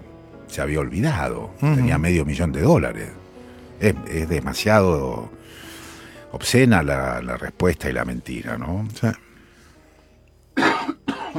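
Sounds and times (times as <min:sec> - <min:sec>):
speech: 0:00.5 - 0:03.2, 0:03.8 - 0:05.7, 0:06.3 - 0:09.3
person coughing from a cold: 0:10.6 - 0:11.3.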